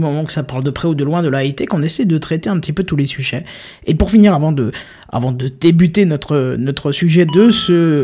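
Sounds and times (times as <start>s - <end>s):
speech: 0.0s - 8.0s
two-note video-game coin chime email notification: 7.3s - 8.0s.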